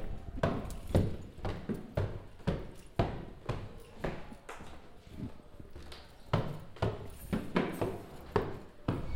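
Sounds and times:
faint noise: 0.0 - 9.1
footsteps climbing stairs: 0.0 - 9.1.

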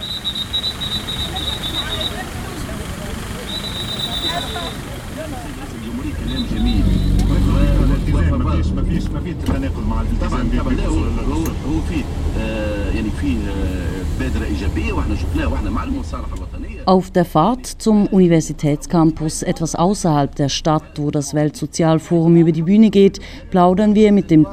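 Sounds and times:
shrill high tones: 0.0 - 2.2, 3.4 - 5.0
busy street traffic with engine rumble at a city intersection: 0.0 - 24.5
voices chattering: 0.0 - 24.5
speech: 14.6 - 24.5.

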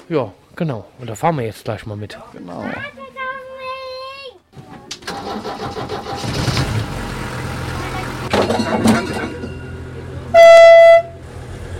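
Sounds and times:
speech: 0.1 - 3.2, 8.4 - 9.4
diesel railbus engine cranking and idling: 5.0 - 11.7
railbus horn blast: 10.3 - 11.3.

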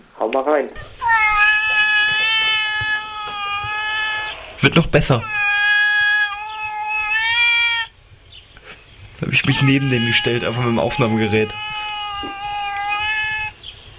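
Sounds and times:
speech: 0.3 - 0.9, 4.6 - 5.4, 9.2 - 12.4
tomcat caterwauling while courting a female cat: 0.8 - 7.9, 9.3 - 13.6.

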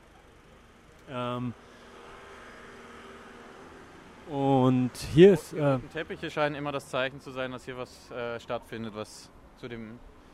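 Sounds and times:
street traffic from passing cars: 0.0 - 10.3
speech: 1.1 - 1.8, 4.3 - 10.1
person making hesitant vocal sound: 5.0 - 5.9.

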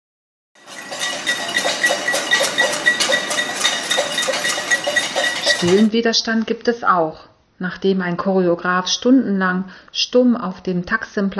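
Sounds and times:
crowd banging pots and pans from balconies: 0.6 - 5.9
speech: 5.6 - 11.3.

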